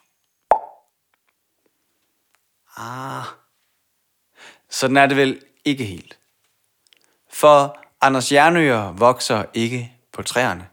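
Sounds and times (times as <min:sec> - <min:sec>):
plop sound effect: 0:00.5 - 0:00.8
speech: 0:02.8 - 0:03.4, 0:04.8 - 0:06.2, 0:07.3 - 0:10.7.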